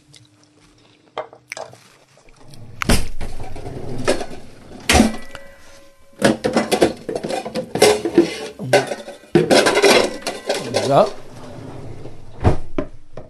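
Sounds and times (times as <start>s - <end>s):
kitchen bowl knocking and clinking as it is taken out: 3.2s - 11.3s
speech: 10.9s - 11.2s.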